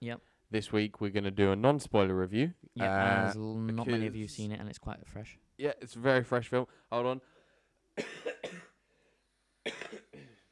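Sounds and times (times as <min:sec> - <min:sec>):
speech: 0:00.0 - 0:07.3, 0:08.0 - 0:08.6
person coughing harshly: 0:08.0 - 0:08.8, 0:09.6 - 0:10.5.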